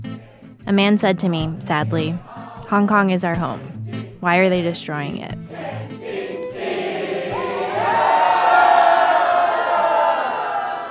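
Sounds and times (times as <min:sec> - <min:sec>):
speech: 0:00.7 - 0:06.0
large crowd singing a national anthem: 0:02.0 - 0:02.8, 0:03.5 - 0:04.2, 0:05.4 - 0:10.8.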